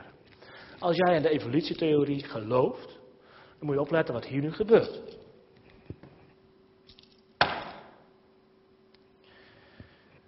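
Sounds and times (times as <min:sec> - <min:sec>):
speech: 0:00.8 - 0:03.0, 0:03.6 - 0:05.2
bunch of keys dropped on a hard floor: 0:04.7 - 0:06.2, 0:06.8 - 0:07.4.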